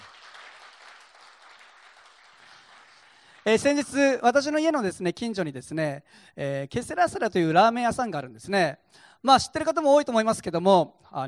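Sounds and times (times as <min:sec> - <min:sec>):
crowd applauding: 0:00.0 - 0:03.5
speech: 0:03.4 - 0:11.2.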